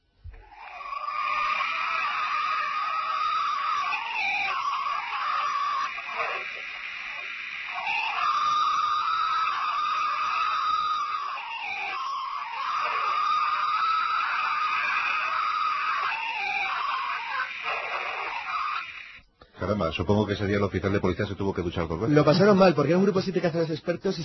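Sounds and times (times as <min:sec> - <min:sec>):
steady hissing outdoor background: 0:00.0 - 0:24.2
purported Bigfoot screams in a forest: 0:01.3 - 0:19.2
speech: 0:19.7 - 0:24.2.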